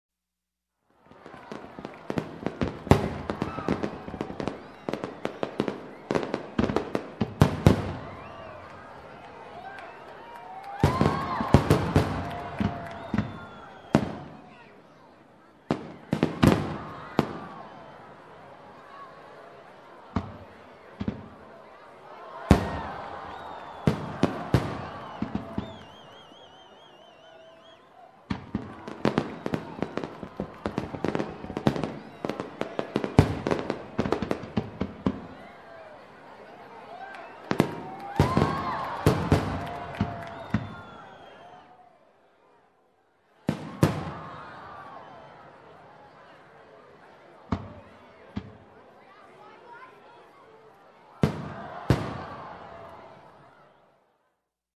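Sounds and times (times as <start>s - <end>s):
crowd of people: 0.8s - 54.6s
fireworks: 1.1s - 8.4s, 10.8s - 14.4s, 15.6s - 17.5s, 20.1s - 21.4s, 22.5s - 26.3s, 28.3s - 35.4s, 37.4s - 41.3s, 43.5s - 44.4s, 47.5s - 48.6s, 51.2s - 52.8s.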